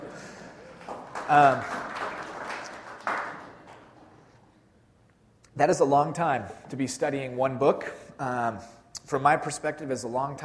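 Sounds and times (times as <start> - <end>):
audience applause: 0.0 - 4.2
speech: 1.3 - 1.8, 5.6 - 10.4.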